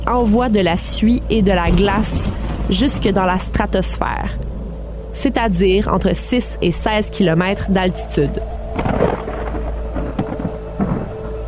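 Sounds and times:
speech: 0.0s - 4.5s, 5.2s - 9.0s
thunder rumbling in a violent thunderstorm: 0.0s - 11.4s.

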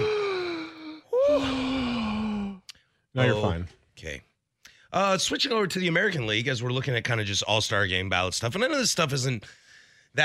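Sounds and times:
person panting with voiced gasping breaths: 0.0s - 2.9s
speech: 3.2s - 4.3s, 4.9s - 10.2s.

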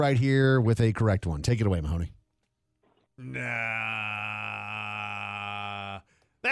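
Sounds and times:
speech: 0.0s - 2.2s, 3.2s - 4.1s
voice imitating a tipsy person's slurred groaning babble: 3.2s - 6.1s.

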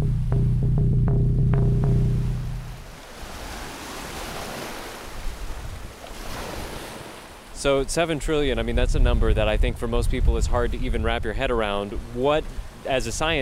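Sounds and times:
low droning hum: 0.0s - 2.9s
waves washing along a bay shoreline: 2.0s - 13.4s
wind buffeting the microphone: 2.4s - 6.9s, 7.8s - 13.4s
speech: 7.6s - 13.4s.

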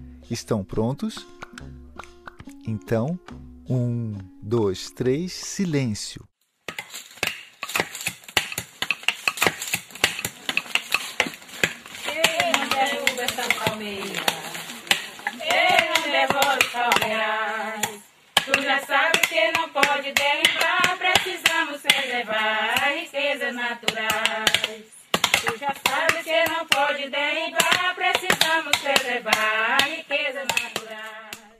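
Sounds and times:
speech: 0.3s - 6.3s
rhythmic cracking and chopping blows splitting hard babaçu coconut shells: 6.6s - 17.2s, 17.8s - 22.1s, 23.8s - 26.8s, 27.6s - 31.5s
women coconut breakers singing a work song in unison: 11.6s - 31.5s.

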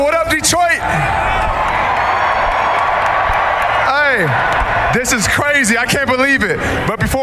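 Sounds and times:
large crowd cheering at a rally in Detroit: 0.0s - 7.2s
people shouting in the crowd: 0.8s - 5.3s
scattered clapping from the crowd: 1.4s - 5.7s
speech: 4.2s - 7.2s.

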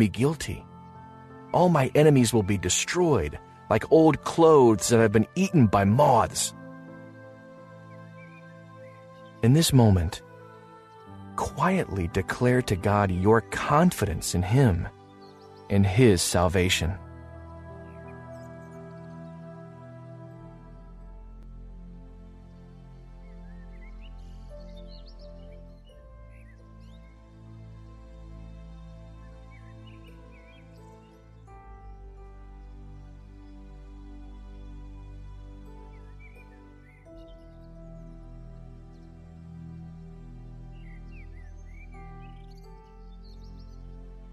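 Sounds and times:
speech: 0.0s - 0.7s, 1.5s - 6.6s, 9.4s - 10.2s, 11.4s - 15.0s, 15.7s - 17.0s
birds chirping and tweeting: 0.0s - 44.3s
sustained orchestral music: 0.0s - 44.3s.

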